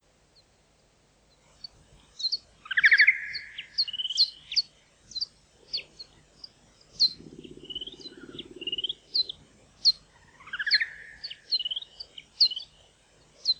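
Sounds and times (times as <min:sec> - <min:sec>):
Pipistrellus nathusii calls: 0:02.7 - 0:04.7, 0:07.0 - 0:12.6.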